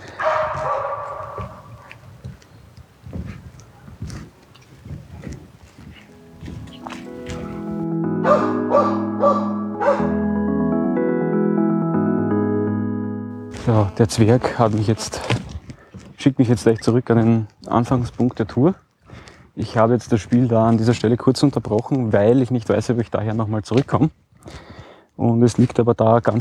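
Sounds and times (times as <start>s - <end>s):
dogs barking with short sharp yaps: 0.0s - 2.0s, 6.0s - 10.2s
plucked notes: 6.1s - 14.0s
sustained chord-like tonal sound: 6.1s - 14.0s
speech: 14.0s - 15.5s, 16.2s - 18.8s, 19.6s - 24.6s, 25.2s - 26.3s.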